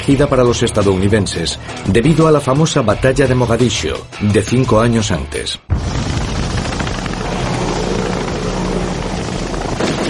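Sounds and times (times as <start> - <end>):
speech: 0.0 - 5.9
Black Hawk helicopter rotor flying: 5.8 - 10.0.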